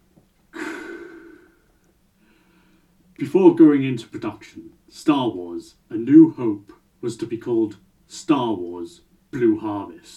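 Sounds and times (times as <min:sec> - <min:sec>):
voice imitating heavy mask-respirator breathing: 0:00.6 - 0:02.8
speech: 0:03.2 - 0:10.1.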